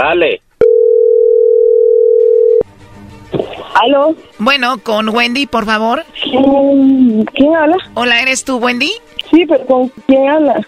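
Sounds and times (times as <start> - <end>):
speech: 0.1 - 0.4, 3.8 - 10.6
telephone dial tone as a call is placed: 0.6 - 2.6.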